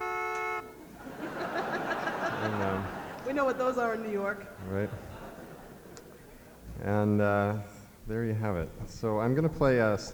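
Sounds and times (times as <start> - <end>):
loud reedy bagpipe chord imitating a car horn: 0.0 - 1.0
soft noisy murmur: 0.0 - 10.1
laughter: 0.4 - 7.5
speech: 3.3 - 5.1, 6.8 - 10.1.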